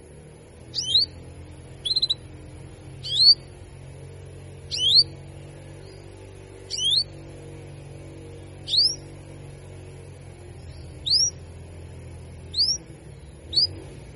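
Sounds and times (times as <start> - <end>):
faint steady hum: 0.0 - 14.1
female canary giving whistled cuit cuit calls: 0.7 - 2.3, 3.0 - 3.5, 4.6 - 5.2, 6.6 - 7.2, 8.6 - 9.1, 10.7 - 11.4, 12.5 - 12.9, 13.5 - 13.8.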